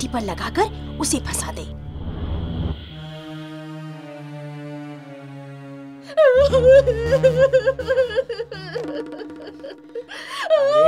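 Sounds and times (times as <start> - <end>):
speech: 0.0 - 1.8, 6.1 - 10.8
woman wailing and sobbing: 6.2 - 10.8.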